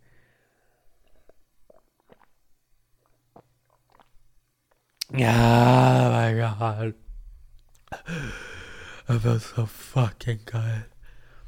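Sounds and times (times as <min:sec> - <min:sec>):
person gulping and swallowing water: 0:00.9 - 0:06.1
speech: 0:05.2 - 0:07.0, 0:09.1 - 0:10.9.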